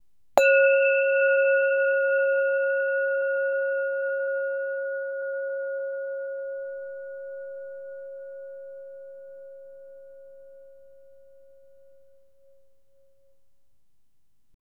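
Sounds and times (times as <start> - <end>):
Tibetan singing bowl struck: 0.4 - 10.9.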